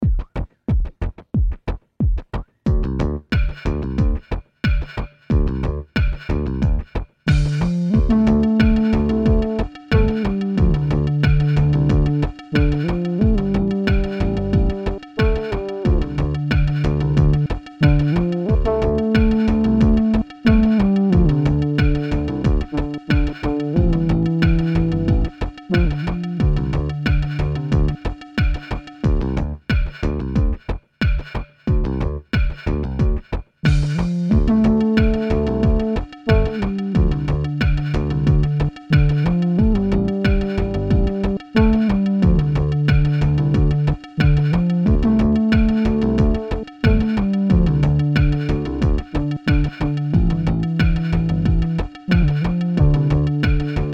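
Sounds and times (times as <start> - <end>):
instrumental song without vocals: 1.4 - 53.9.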